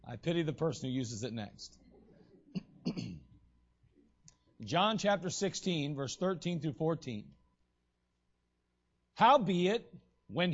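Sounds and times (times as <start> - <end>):
speech: 0.1 - 1.8, 4.6 - 7.4, 9.2 - 10.5
coughs into the microphone: 2.5 - 3.4.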